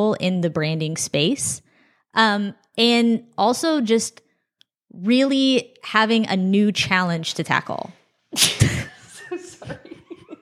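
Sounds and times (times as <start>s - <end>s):
speech: 0.0s - 4.2s, 4.9s - 8.8s
loud sharp sneeze: 8.3s - 8.9s
laughter: 8.6s - 10.3s.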